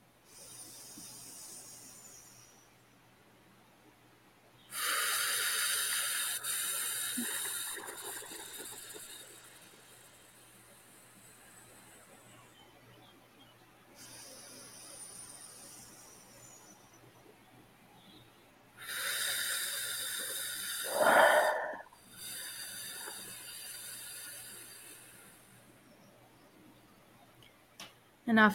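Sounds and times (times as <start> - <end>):
slow deep breathing during a guided relaxation exercise: 4.7 - 12.7, 14.0 - 17.0, 18.8 - 26.1.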